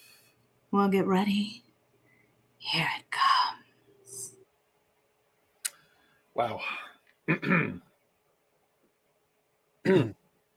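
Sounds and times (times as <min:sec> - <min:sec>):
speech: 0:00.7 - 0:01.6, 0:02.7 - 0:03.0, 0:06.4 - 0:07.8, 0:09.8 - 0:10.2
stifled cough: 0:07.3 - 0:07.8, 0:09.9 - 0:10.2
throat clearing: 0:07.3 - 0:07.9, 0:09.8 - 0:10.2.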